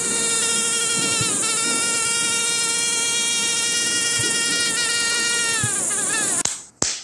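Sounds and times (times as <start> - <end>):
high-pitched mosquito whine at night: 0.0 - 6.5.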